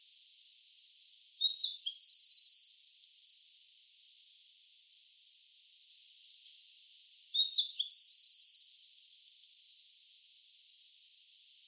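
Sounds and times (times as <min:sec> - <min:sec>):
Eurasian wren Troglodytes troglodytes singing a rapid high-pitched jumble: 0:00.6 - 0:03.5, 0:06.4 - 0:09.8.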